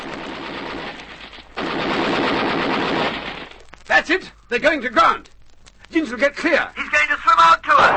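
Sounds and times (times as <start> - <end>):
radio-drama machine-gun gunfire sound effect: 0.0 - 3.9
speech: 4.0 - 5.3, 5.9 - 7.9.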